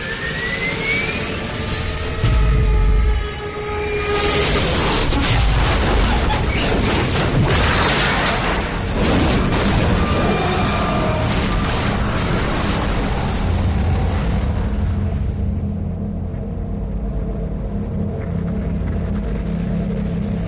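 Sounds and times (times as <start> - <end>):
high aircraft engine whine of a plane falling out of control: 0.0 - 5.5, 13.1 - 20.4
loud sustained roaring rumble: 0.9 - 7.5, 8.3 - 20.4
deep heavy explosion after a plane crash: 4.1 - 15.8.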